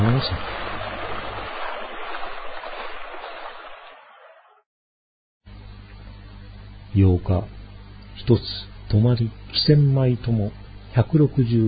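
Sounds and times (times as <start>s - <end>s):
shallow river rapids rushing with a deep low rumble: 0.0s - 4.4s
speech: 0.2s - 0.6s, 7.0s - 7.6s, 8.2s - 11.6s.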